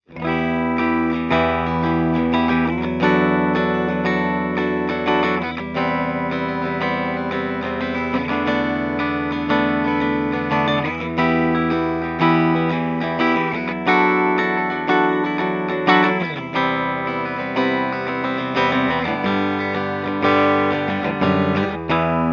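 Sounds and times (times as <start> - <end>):
clean guitar on bridge pickups: 0.0 - 22.3.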